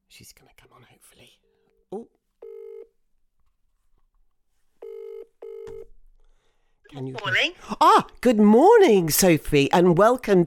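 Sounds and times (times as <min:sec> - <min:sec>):
speech: 0:00.2 - 0:02.2, 0:07.0 - 0:10.4
telephone ringing with a steady electronic tone: 0:02.4 - 0:02.9, 0:04.8 - 0:05.9.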